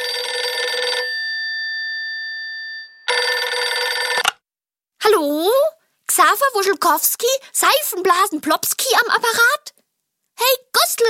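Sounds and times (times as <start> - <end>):
old-fashioned telephone bell ringing: 0.0 - 4.3
speech: 6.4 - 9.7, 10.4 - 11.0.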